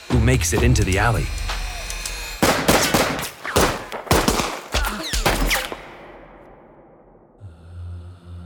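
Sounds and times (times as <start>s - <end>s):
speech: 0.2s - 1.5s
loud sharp gunshots: 2.1s - 7.2s.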